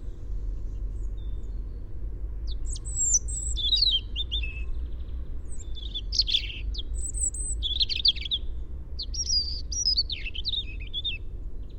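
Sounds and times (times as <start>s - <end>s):
European robin singing: 0.0s - 11.7s
low background hum: 0.0s - 11.7s.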